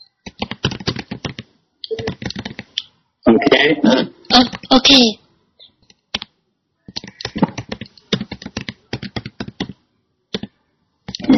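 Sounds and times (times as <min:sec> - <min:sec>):
woman typing on a computer keyboard: 0:00.2 - 0:02.8, 0:04.3 - 0:04.8, 0:05.8 - 0:10.6
speech: 0:03.5 - 0:05.2.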